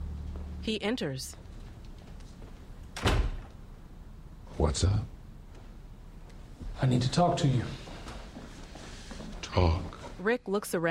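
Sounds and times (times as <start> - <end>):
faint hiss: 0.0 - 10.8
speech: 0.6 - 1.4, 4.6 - 5.1, 6.8 - 7.8, 9.5 - 10.8
suite door opening with soft thud: 2.9 - 3.6.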